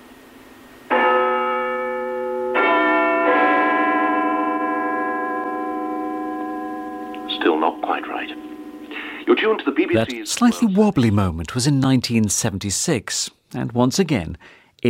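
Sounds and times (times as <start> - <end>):
Big Ben clock-tower chimes: 0.9 - 10.1
speech: 9.3 - 14.8.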